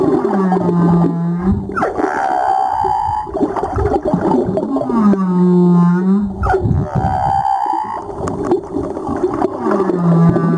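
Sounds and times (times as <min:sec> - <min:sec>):
humpback whale song: 0:00.0 - 0:10.5
rumbling underwater noise: 0:00.0 - 0:10.5.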